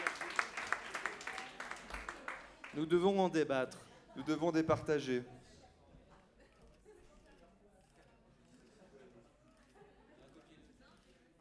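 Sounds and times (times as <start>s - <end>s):
applause from a small group: 0.0s - 3.0s
faint murmur of voices: 1.1s - 11.4s
speech: 2.8s - 5.4s.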